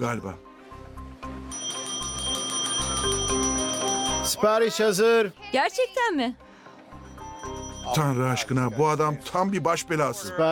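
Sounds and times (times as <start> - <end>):
speech: 0.0 - 0.5, 4.3 - 6.4, 7.9 - 10.5
service bell dinging: 1.5 - 4.4, 7.0 - 8.9.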